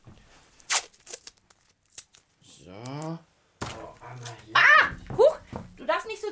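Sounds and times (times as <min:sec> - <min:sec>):
smaller adhesive tape rustles and peels: 0:00.2 - 0:03.2
adhesive tape ripped off its roll: 0:00.6 - 0:03.1.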